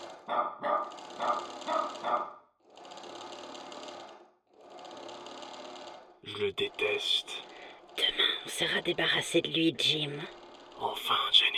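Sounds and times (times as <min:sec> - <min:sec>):
sewing machine rattling: 0:00.0 - 0:11.5
dog barking: 0:00.3 - 0:02.4
speech: 0:06.4 - 0:07.4, 0:08.2 - 0:11.2.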